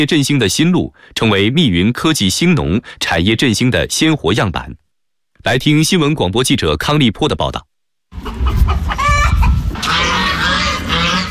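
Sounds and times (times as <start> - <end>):
speech: 0.0 - 4.8, 5.4 - 8.6
geese-like honking of farmyard poultry: 8.2 - 11.3
roosters crowing: 8.2 - 11.3.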